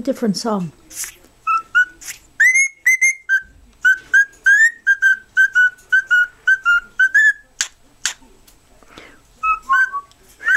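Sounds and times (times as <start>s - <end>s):
speech: 0.0s - 1.2s
cockatiel whistling short notes: 1.4s - 7.5s, 9.4s - 10.5s.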